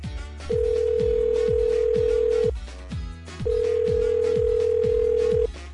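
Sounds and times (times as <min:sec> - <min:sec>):
telephone ringing on the caller's end in long low tones: 0:00.5 - 0:02.5, 0:03.5 - 0:05.5.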